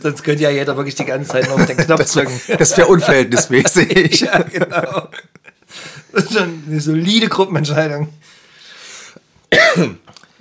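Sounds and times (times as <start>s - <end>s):
speech: 0.0s - 8.4s, 9.5s - 10.1s
laughter: 1.0s - 6.6s
person coughing: 9.5s - 10.1s.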